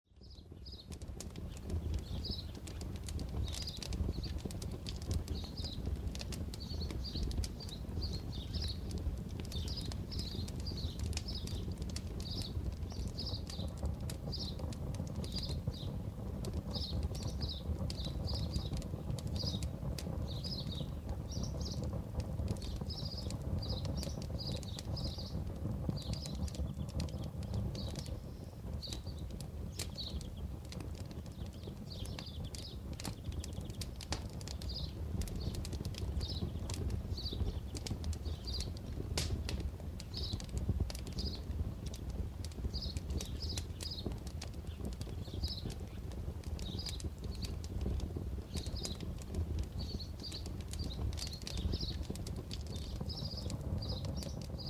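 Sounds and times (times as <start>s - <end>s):
birds: 0.1s - 54.6s
fire burning: 0.1s - 54.6s.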